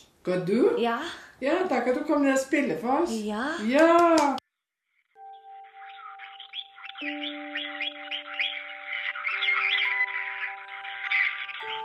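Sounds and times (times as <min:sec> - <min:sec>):
speech: 0:00.2 - 0:04.4
parrot squawking and chirping in a bird shop: 0:05.2 - 0:11.8.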